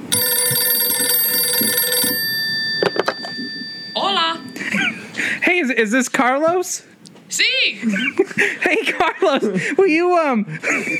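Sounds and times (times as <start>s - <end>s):
telephone call ringing on the other end of the line: 0.0s - 5.4s
speech: 5.6s - 10.9s.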